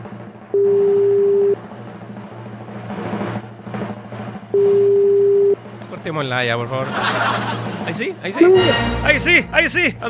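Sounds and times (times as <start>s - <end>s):
telephone ringback tone on an outgoing call: 0.6s - 1.6s, 4.6s - 5.6s
speech: 6.0s - 10.0s
laughter: 6.6s - 9.2s.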